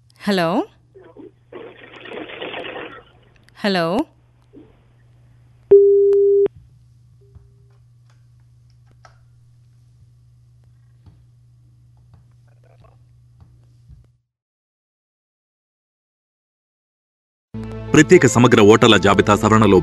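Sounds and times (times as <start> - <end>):
faint low hum: 0.0 - 14.2
speech: 0.2 - 0.8, 3.6 - 4.1, 18.0 - 19.8
busy tone on a cut-off telephone line: 5.7 - 6.5.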